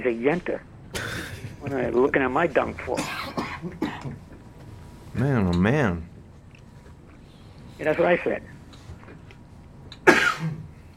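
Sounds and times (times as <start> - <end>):
speech: 0.0 - 1.0, 1.6 - 3.8, 5.2 - 6.1, 7.8 - 8.5
sharp raspy throaty cough: 0.9 - 1.5, 2.9 - 4.2, 10.0 - 10.7.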